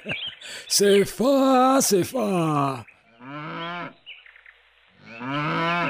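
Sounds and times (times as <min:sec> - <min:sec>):
speech: 0:00.0 - 0:02.9
cow mooing behind a house: 0:03.1 - 0:04.0, 0:05.0 - 0:05.8.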